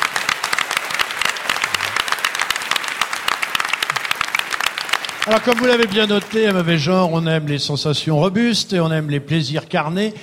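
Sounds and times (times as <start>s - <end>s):
audience applause: 0.0s - 7.6s
speech: 5.2s - 10.2s.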